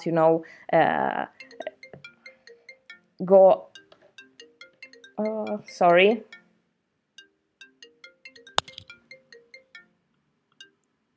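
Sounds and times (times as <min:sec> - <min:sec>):
speech: 0:00.0 - 0:01.7, 0:03.2 - 0:03.7, 0:05.2 - 0:06.4
mobile phone ringtone of bright repeating electronic notes: 0:01.4 - 0:03.0, 0:03.8 - 0:06.5, 0:07.2 - 0:09.9
sharp click: 0:08.6 - 0:08.9.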